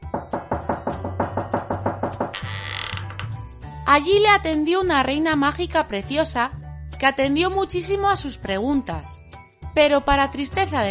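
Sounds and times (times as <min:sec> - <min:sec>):
knocking on a door: 0:00.0 - 0:02.6
speech: 0:03.9 - 0:09.2, 0:09.8 - 0:10.8.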